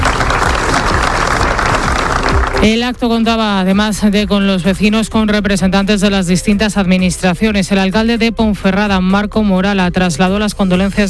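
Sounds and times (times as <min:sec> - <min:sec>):
crowd applauding before a town hall: 0:00.0 - 0:02.8
speech: 0:02.6 - 0:11.0.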